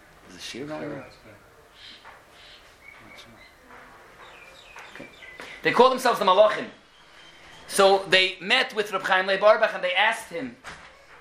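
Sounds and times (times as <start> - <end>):
low steady noise: 0.0 - 11.1
speech: 0.4 - 2.0, 5.0 - 6.8, 7.7 - 10.8
bird chirps: 0.9 - 8.1.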